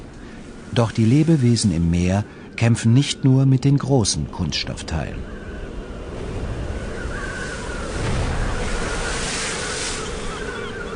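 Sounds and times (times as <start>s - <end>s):
speech: 0.8s - 5.4s
surf breaking against rocks: 6.2s - 10.6s.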